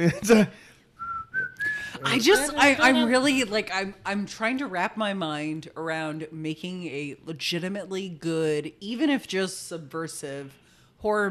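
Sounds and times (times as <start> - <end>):
speech: 0.0 - 0.7, 2.0 - 11.2
person whistling a jaunty jazz tune: 1.0 - 2.0
laughing chatter: 1.9 - 3.5
excited talking: 1.9 - 4.2.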